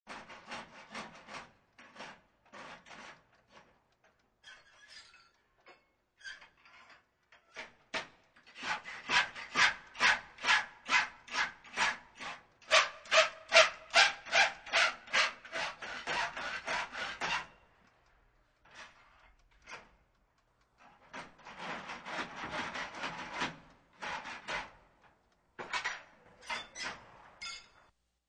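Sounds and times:
filing: 0:00.1 - 0:03.8, 0:05.7 - 0:20.0, 0:20.8 - 0:25.1.

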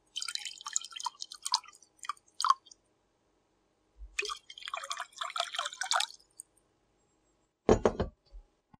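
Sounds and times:
water pouring into a glass: 0:00.0 - 0:02.8, 0:04.2 - 0:06.5.

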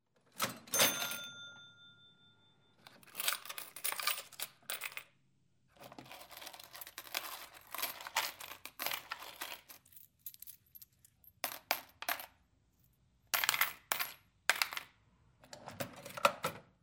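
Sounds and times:
change being counted: 0:00.4 - 0:01.6, 0:02.8 - 0:05.1, 0:05.8 - 0:12.3, 0:13.4 - 0:14.8
cash register closing: 0:00.4 - 0:02.0
little bell ringing: 0:00.7 - 0:02.8.

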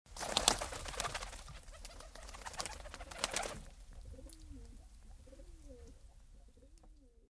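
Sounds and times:
pigeon flying: 0:00.1 - 0:03.7.

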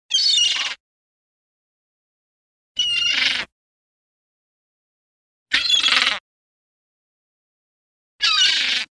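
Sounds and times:
one seagull crying clearly: 0:00.1 - 0:00.8, 0:02.8 - 0:03.5, 0:05.5 - 0:06.2, 0:08.2 - 0:08.8.

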